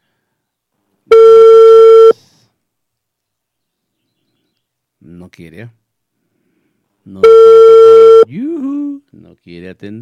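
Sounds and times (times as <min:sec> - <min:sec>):
electronic ringback tone on an outgoing telephone call: 0:01.1 - 0:02.2, 0:07.2 - 0:08.3
speech: 0:05.1 - 0:05.8, 0:07.1 - 0:10.0.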